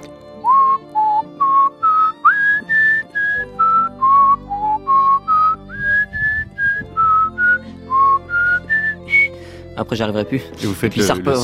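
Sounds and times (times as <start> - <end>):
person whistling a recurring film theme melody: 0.4 - 9.4
speech: 9.8 - 11.4.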